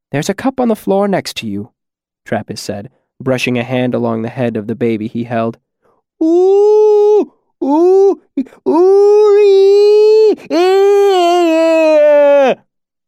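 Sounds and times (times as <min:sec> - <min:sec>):
speech: 0:00.1 - 0:05.6, 0:06.2 - 0:12.6
man bellowing cry in long wails: 0:06.2 - 0:12.6.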